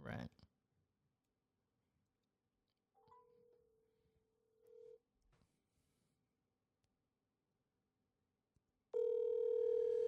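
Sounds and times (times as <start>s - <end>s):
speech: 0.0s - 0.5s
outgoing phone ringback tone: 9.0s - 10.0s.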